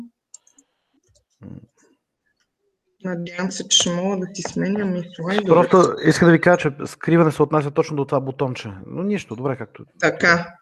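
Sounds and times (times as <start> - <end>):
computer mouse clicking: 0.4 - 1.3
faint speech-like murmuring: 1.4 - 1.6, 3.1 - 10.5
speech: 1.4 - 1.7, 3.0 - 10.6.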